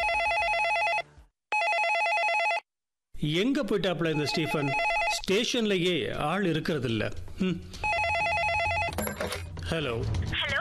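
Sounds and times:
telephone ringing with an incoming call at a police station at night: 0.0s - 2.7s, 4.1s - 5.3s, 7.8s - 9.5s
speech: 3.2s - 7.8s, 9.7s - 10.4s.

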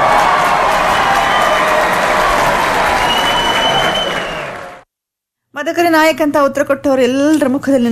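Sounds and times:
crowd applause: 0.0s - 4.8s
speech: 5.6s - 7.8s.

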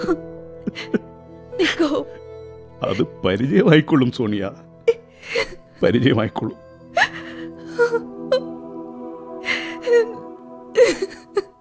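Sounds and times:
speech: 0.0s - 2.2s, 2.8s - 4.7s, 5.4s - 6.6s
young woman sobbing with gasping breaths and whimpers: 0.0s - 2.2s, 4.8s - 5.8s, 6.9s - 8.6s, 9.4s - 11.5s
steady tonal background: 0.0s - 11.5s.

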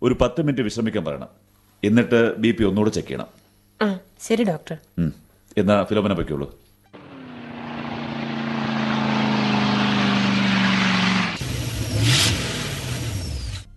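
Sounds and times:
speech: 0.0s - 6.6s
car engine revving as the vehicle is turned around: 7.0s - 13.7s.

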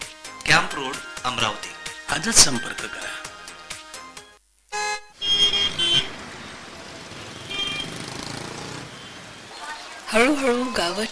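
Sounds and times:
speech: 0.5s - 3.2s, 10.1s - 11.1s
car horn toots: 4.7s - 6.2s, 7.3s - 9.3s
busy road traffic of cars and motor vehicles: 5.2s - 11.1s.

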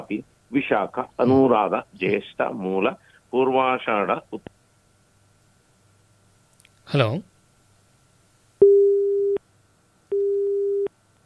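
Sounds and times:
speech: 0.1s - 4.5s, 6.9s - 7.3s
telephone line tone beeps after a dropped connection: 8.6s - 9.4s, 10.1s - 10.9s.

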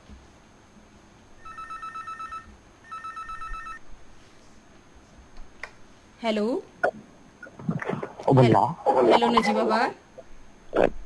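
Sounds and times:
low hiss: 0.0s - 11.0s
electronic phone ringback tone through a muffled line: 1.4s - 3.8s
speech: 6.2s - 7.1s, 8.3s - 10.0s.

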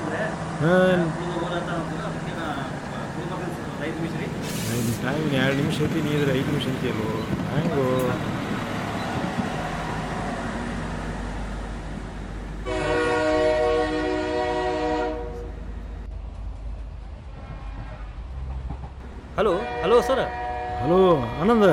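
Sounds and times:
rumble of rail and traffic noise: 0.0s - 21.7s
speech: 0.1s - 2.2s, 3.2s - 8.4s
departing train horn blast: 12.6s - 15.6s, 19.4s - 21.7s.

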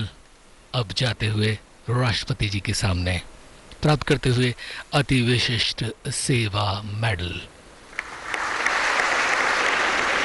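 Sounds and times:
speech: 0.8s - 7.5s
dense applause at a medal ceremony: 7.9s - 10.2s.

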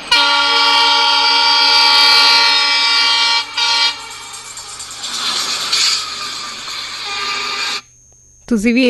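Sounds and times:
train horn blaring as the train arrives: 0.0s - 4.4s, 7.0s - 7.8s
rumbling hissing rail noise of arriving train: 0.0s - 7.8s.

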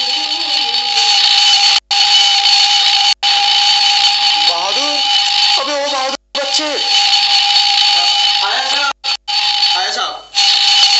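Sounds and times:
alarm ringing with a bright metallic clatter: 0.0s - 10.9s.

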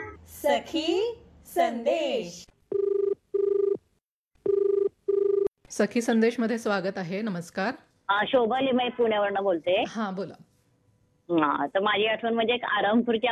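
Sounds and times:
speech: 0.5s - 2.5s, 5.8s - 10.4s, 11.3s - 13.3s
telephone ringing for an incoming call on a radio phone-in: 2.7s - 3.8s, 4.5s - 5.5s.

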